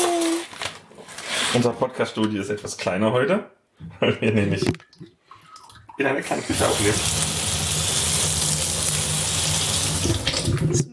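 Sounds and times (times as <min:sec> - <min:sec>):
speech: 0:01.5 - 0:05.2, 0:06.0 - 0:07.3
water running from a kitchen tap in a small kitchen: 0:05.7 - 0:10.9.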